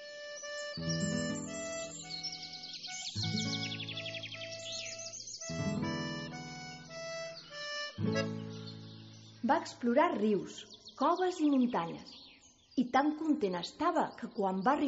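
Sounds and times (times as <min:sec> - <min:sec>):
soft sustained musical tones: 0:00.0 - 0:09.4
birds chirping and trilling: 0:00.0 - 0:14.8
speech: 0:09.5 - 0:12.2, 0:12.8 - 0:14.8.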